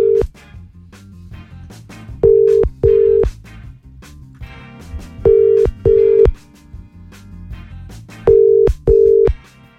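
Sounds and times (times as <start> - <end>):
telephone call ringing tone in double bursts: 0.0 - 0.3, 2.2 - 3.3, 5.2 - 6.3, 8.3 - 9.4
faint music bed: 0.0 - 9.7.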